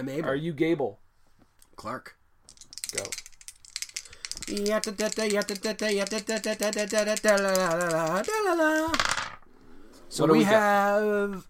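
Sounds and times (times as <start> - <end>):
speech: 0.0 - 1.0, 1.8 - 2.2, 2.9 - 3.2, 4.4 - 9.2, 10.1 - 11.4
dice being shaken and rolled: 2.5 - 9.4.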